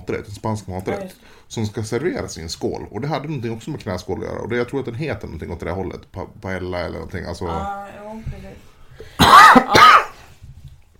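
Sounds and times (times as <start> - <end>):
speech: 0.1 - 10.0
person coughing: 9.1 - 10.2.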